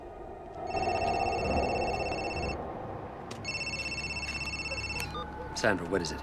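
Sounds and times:
steady hum: 0:00.0 - 0:05.7
phone ringing with electronic trilling tone: 0:00.7 - 0:02.6, 0:03.4 - 0:05.4
speech: 0:05.6 - 0:06.2.

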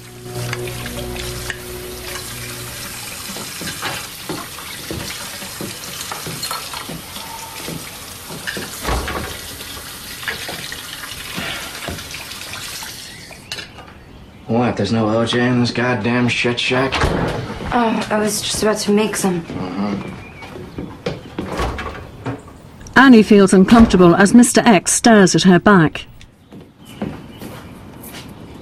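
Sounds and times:
running water pouring into a kitchen sink: 0:00.1 - 0:13.7
dishes clinking and clattering: 0:03.2 - 0:09.7
sharper knocks of plates and utensils: 0:03.3 - 0:08.8
speech: 0:14.8 - 0:20.2, 0:23.0 - 0:26.1.

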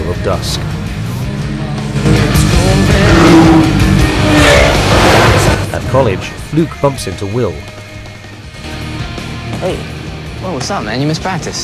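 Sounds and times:
Porsche, Lamborghini, Chevrolet and BMW sports cars driving in convoy at dusk: 0:00.0 - 0:06.4
speech: 0:00.2 - 0:00.8, 0:05.8 - 0:07.8, 0:09.6 - 0:11.6.

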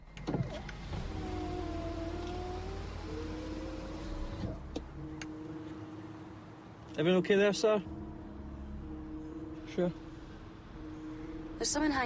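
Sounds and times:
electric power window motor on a police patrol car whirring as the window lowers: 0:00.0 - 0:04.9
police patrol car low engine rumble: 0:00.0 - 0:12.0
speech: 0:07.0 - 0:08.0, 0:09.8 - 0:10.0, 0:11.6 - 0:12.0.

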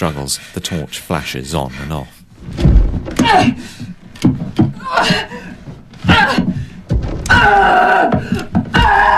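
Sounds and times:
speech: 0:00.0 - 0:04.3, 0:04.9 - 0:05.5
shovelfuls of earth thudding onto a wooden coffin: 0:06.9 - 0:09.0.

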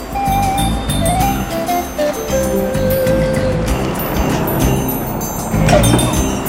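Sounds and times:
bus engine idling and rolling up to a stop: 0:00.0 - 0:06.4.

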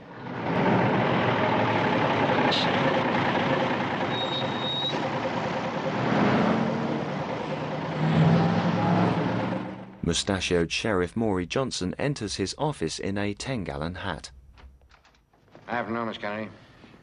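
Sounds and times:
delivery truck engine roaring along a highway: 0:00.0 - 0:10.3
truck road rumble on a highway: 0:00.0 - 0:10.3
speech: 0:10.1 - 0:14.4, 0:15.7 - 0:16.6.

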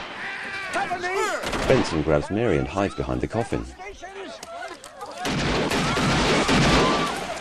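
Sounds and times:
speech: 0:00.7 - 0:04.4
gunshots fired at an honor guard during a shootout at a funeral: 0:01.2 - 0:02.3, 0:05.2 - 0:07.3.

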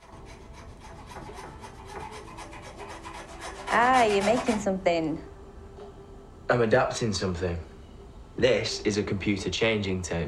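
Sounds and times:
saw cutting through the edge of a wooden table: 0:00.0 - 0:04.7
speech: 0:03.7 - 0:05.3, 0:06.5 - 0:07.7, 0:08.4 - 0:10.2.

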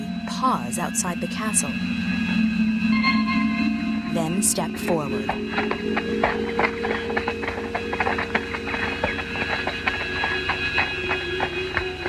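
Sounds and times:
constant hum: 0:00.0 - 0:12.0
speech: 0:00.4 - 0:03.0, 0:04.2 - 0:07.2
horse hooves clip-clopping at a walking pace in an alley: 0:04.1 - 0:12.0.

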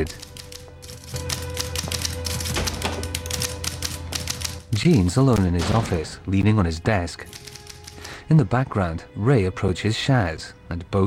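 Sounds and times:
speech: 0:00.0 - 0:00.3, 0:04.8 - 0:07.4, 0:08.3 - 0:11.0
rapid typing with crisp key clacks: 0:00.0 - 0:04.7, 0:07.3 - 0:08.1.

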